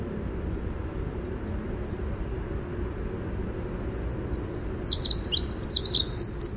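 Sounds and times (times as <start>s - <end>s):
low background rumble: 0.0s - 6.5s
winter wren singing: 3.2s - 6.5s.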